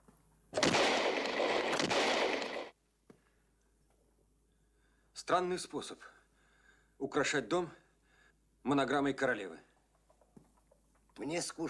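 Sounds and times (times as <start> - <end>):
gunshots fired indoors at the wall of a house: 0.6 - 2.8
speech: 5.3 - 6.2, 7.0 - 7.8, 8.6 - 9.7, 11.2 - 11.6.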